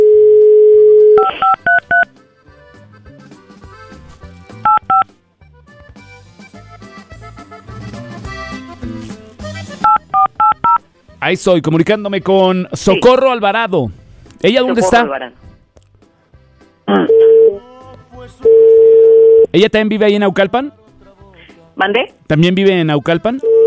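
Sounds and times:
touch-tone telephone keypad beeps: 0:00.0 - 0:02.1, 0:04.6 - 0:05.1, 0:09.8 - 0:10.8, 0:16.9 - 0:17.6
touch-tone telephone line dial tone: 0:00.0 - 0:02.1, 0:16.9 - 0:17.6, 0:18.4 - 0:19.5, 0:23.4 - 0:23.6
speech: 0:11.3 - 0:15.4, 0:19.6 - 0:20.8, 0:21.8 - 0:23.5.

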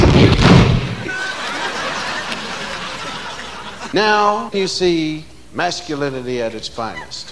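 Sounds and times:
bathroom door slamming: 0:00.0 - 0:01.1
laughter: 0:01.0 - 0:04.2
speech: 0:03.9 - 0:07.3.

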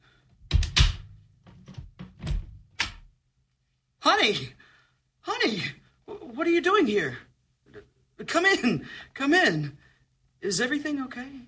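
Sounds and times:
door being opened with solid clunks and rattles: 0:00.5 - 0:03.0
speech: 0:04.2 - 0:04.6, 0:05.2 - 0:05.8, 0:06.4 - 0:07.3, 0:08.2 - 0:09.8, 0:10.4 - 0:11.4.

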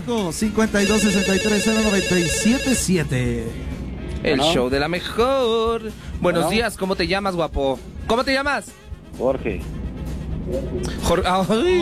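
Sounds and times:
speech: 0:00.0 - 0:09.8, 0:10.5 - 0:11.8
telephone electronic ringtone with an incoming call: 0:00.7 - 0:03.0.

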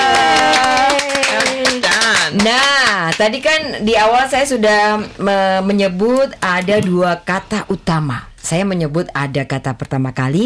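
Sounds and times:
small group clapping: 0:00.0 - 0:03.4
speech: 0:03.2 - 0:10.4.

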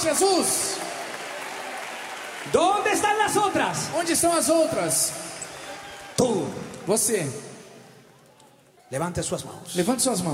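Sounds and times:
speech: 0:00.0 - 0:00.9, 0:02.4 - 0:05.4, 0:06.2 - 0:07.5, 0:08.9 - 0:10.3
crowd clapping: 0:00.0 - 0:07.2.

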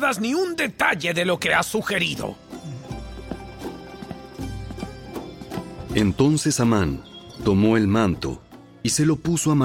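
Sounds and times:
speech: 0:00.0 - 0:02.5, 0:06.0 - 0:09.6
sustained musical background: 0:00.0 - 0:09.6
horse hooves clip-clopping: 0:02.9 - 0:06.4.

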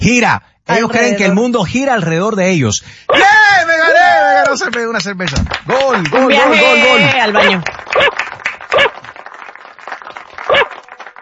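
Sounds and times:
speech: 0:00.0 - 0:09.0
person imitating dog barks: 0:03.1 - 0:03.6, 0:06.4 - 0:08.1.

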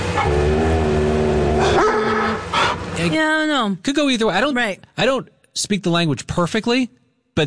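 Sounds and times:
dog growling at another animal: 0:00.2 - 0:02.8
speech: 0:03.7 - 0:07.4.

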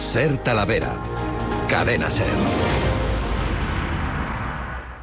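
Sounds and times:
speech: 0:00.1 - 0:01.1, 0:01.7 - 0:02.9
explosion boom with deep rumbling tail: 0:02.4 - 0:05.0.

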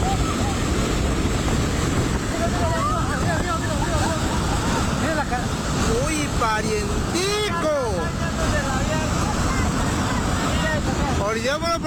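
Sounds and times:
raging river roaring: 0:00.0 - 0:11.8.

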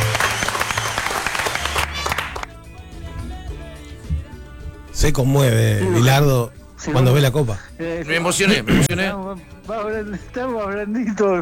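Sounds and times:
loud dense audience applause: 0:00.0 - 0:02.5
speech: 0:05.0 - 0:11.4.

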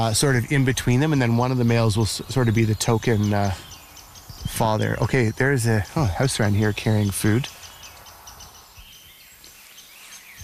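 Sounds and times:
speech: 0:00.0 - 0:03.7, 0:04.5 - 0:07.6
rose-breasted grosbeak singing: 0:00.0 - 0:10.4.

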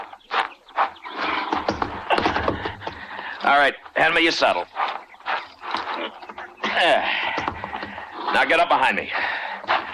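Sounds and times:
lame horse shuffling and stamping its hooves: 0:00.0 - 0:09.9
horse snorting: 0:01.1 - 0:03.2, 0:05.3 - 0:08.5
speech: 0:03.5 - 0:04.8, 0:06.8 - 0:07.3, 0:08.3 - 0:09.4.

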